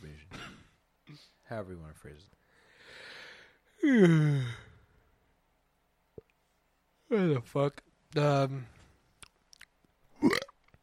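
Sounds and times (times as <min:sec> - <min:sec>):
speech: 0:01.2 - 0:02.4, 0:03.8 - 0:04.7, 0:07.1 - 0:08.8
person burping: 0:03.8 - 0:04.7, 0:10.2 - 0:10.6.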